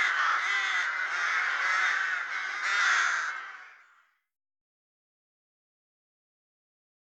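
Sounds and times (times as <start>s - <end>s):
rook chorus of many harsh overlapping caws: 0.0s - 4.2s.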